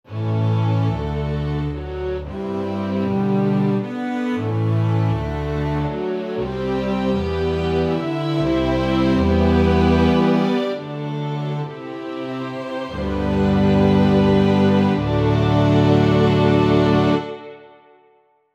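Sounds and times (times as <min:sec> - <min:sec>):
string section: 0:00.0 - 0:18.2.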